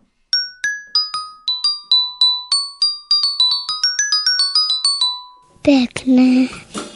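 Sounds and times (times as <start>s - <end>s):
glockenspiel with tuned metal bars playing a quick bright melody: 0.3s - 5.6s
speech: 5.7s - 6.7s.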